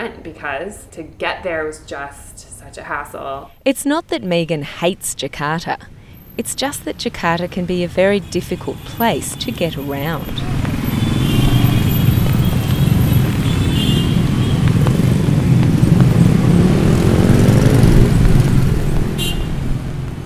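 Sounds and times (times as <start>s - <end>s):
speech: 0.0s - 10.7s
car engines in dense city street traffic: 5.3s - 20.2s.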